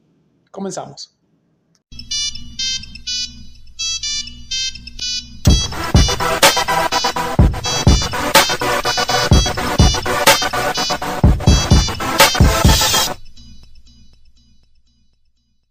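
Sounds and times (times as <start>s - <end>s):
speech: 0.6s - 1.2s
classic mobile phone ringtone beeping melody: 1.9s - 10.1s
music track with punchy drums: 5.5s - 13.2s.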